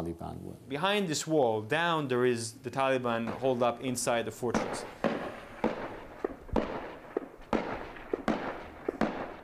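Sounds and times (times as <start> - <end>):
speech: 0.0 - 5.0
gunfire from fighters on a fortress wall shooting into a compound: 3.2 - 9.4
bullets ricocheting overhead: 4.4 - 9.4.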